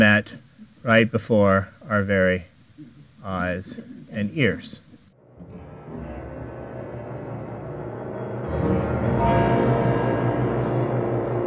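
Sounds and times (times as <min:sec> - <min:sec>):
speech: 0:00.0 - 0:04.8
deep resonant bells ringing in an opera recording: 0:05.2 - 0:11.4
sustained orchestral music in an opera recording: 0:05.2 - 0:11.4.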